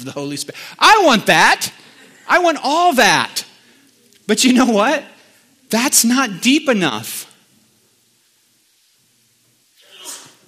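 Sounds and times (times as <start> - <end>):
speech: 0.0 - 3.4, 4.3 - 7.3
person sneezing: 9.8 - 10.4.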